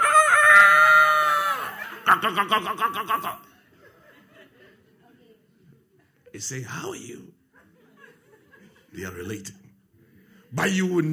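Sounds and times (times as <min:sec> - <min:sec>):
rooster crowing: 0:00.0 - 0:01.8
laughter: 0:01.0 - 0:06.2, 0:07.5 - 0:09.0
chickens clucking excitedly: 0:01.7 - 0:03.4
speech: 0:02.2 - 0:03.5, 0:06.4 - 0:07.4, 0:08.9 - 0:09.6, 0:10.5 - 0:11.1.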